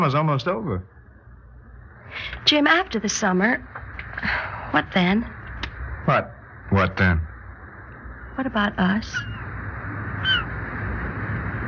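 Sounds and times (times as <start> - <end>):
speech: 0.0 - 1.0, 2.1 - 5.4, 6.0 - 7.3, 8.4 - 9.4
low rumble: 0.0 - 11.6
seagull cry: 9.1 - 9.5, 10.2 - 10.6.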